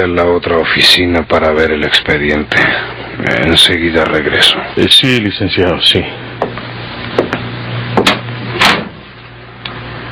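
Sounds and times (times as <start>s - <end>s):
speech: 0.0s - 6.2s
steady low hum: 0.0s - 10.1s
door closing with a firm thud: 8.0s - 9.0s.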